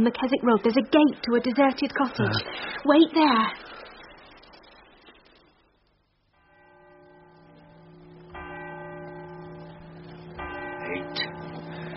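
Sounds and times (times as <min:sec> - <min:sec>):
speech: 0:00.0 - 0:03.9
faint noise: 0:00.0 - 0:11.9
clock bell striking the hour: 0:06.4 - 0:11.9.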